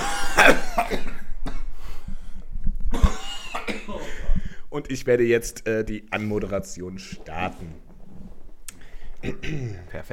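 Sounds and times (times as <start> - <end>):
person coughing in a harsh fit: 0.0 - 1.7, 2.9 - 4.4, 9.2 - 10.0
speech: 4.8 - 7.8, 9.2 - 10.1.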